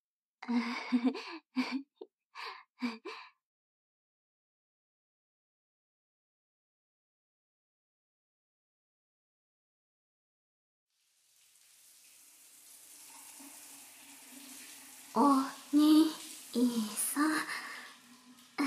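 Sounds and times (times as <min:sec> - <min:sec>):
short breathy gasps: 0:00.5 - 0:01.8, 0:17.3 - 0:18.0
speech: 0:00.5 - 0:03.0, 0:15.2 - 0:15.9
shower water running: 0:10.9 - 0:18.6.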